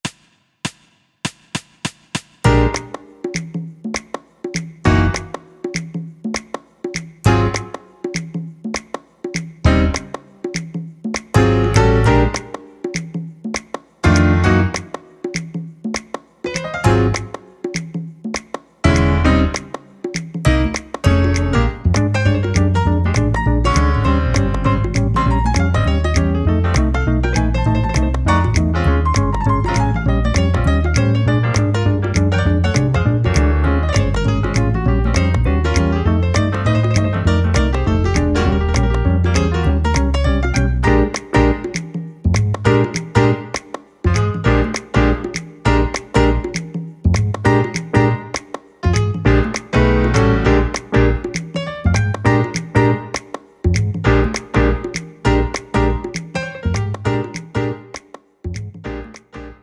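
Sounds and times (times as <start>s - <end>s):
classy jazz music without drums: 2.4s - 6.5s, 7.2s - 8.8s, 9.4s - 59.6s.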